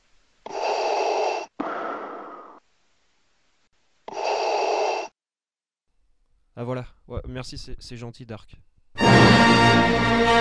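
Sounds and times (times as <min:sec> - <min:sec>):
heavy rasping breathing: 0:00.5 - 0:01.6, 0:04.1 - 0:05.2
speech: 0:06.6 - 0:08.7, 0:09.9 - 0:10.3.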